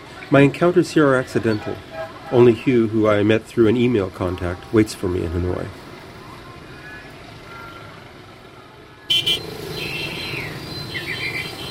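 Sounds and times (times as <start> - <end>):
moped engines droning in busy city street traffic: 0.0 - 11.6
speech: 0.3 - 5.8
short horn toots in city traffic: 1.4 - 2.8, 9.1 - 11.6.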